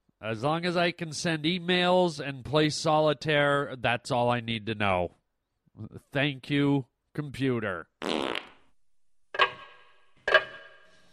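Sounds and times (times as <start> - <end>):
speech: 0.2 - 5.2, 5.8 - 8.4
clock ticking with metallic ring: 9.4 - 11.1.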